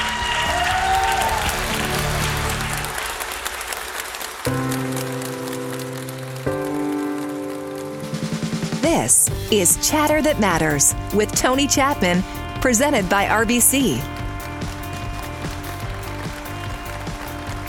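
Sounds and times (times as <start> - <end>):
large audience applause for speaker coming on stage: 0.0 - 9.0, 13.7 - 17.6
sustained musical chords: 4.5 - 17.6
speech: 9.0 - 14.2.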